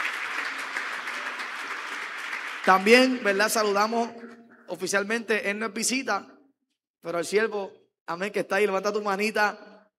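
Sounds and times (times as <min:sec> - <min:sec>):
group applauding a young woman: 0:00.0 - 0:04.4
speech: 0:02.6 - 0:06.3, 0:07.0 - 0:09.7.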